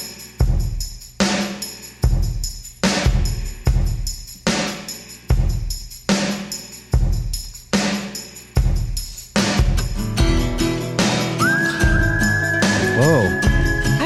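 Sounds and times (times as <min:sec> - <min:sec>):
strong rhythmic beats: 0:00.0 - 0:14.0
guitar: 0:09.4 - 0:14.0
clear whistled melody over the band: 0:11.2 - 0:14.0.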